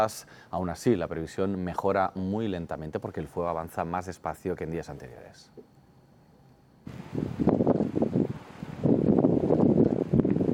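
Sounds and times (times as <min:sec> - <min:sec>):
speech: 0:00.0 - 0:05.7
wind gusts at a large wildfire near Niebla, Huelva: 0:06.9 - 0:10.5.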